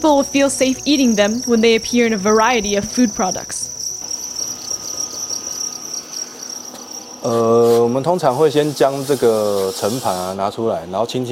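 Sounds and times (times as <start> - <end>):
speech: 0.0 - 3.7, 7.2 - 11.3
many farmed crickets chirping in sanitized containers and buckets: 0.0 - 10.4.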